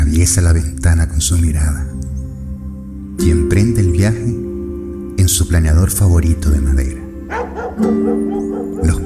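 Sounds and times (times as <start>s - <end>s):
speech: 0.1s - 2.0s, 3.2s - 4.5s, 5.3s - 9.0s
dogs barking in yipping bursts: 7.2s - 9.0s.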